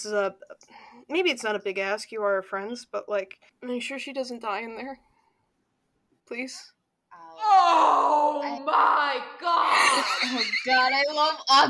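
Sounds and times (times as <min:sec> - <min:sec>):
speech: 0:00.0 - 0:05.1, 0:06.3 - 0:11.6
person screaming away from the microphone: 0:07.3 - 0:10.1.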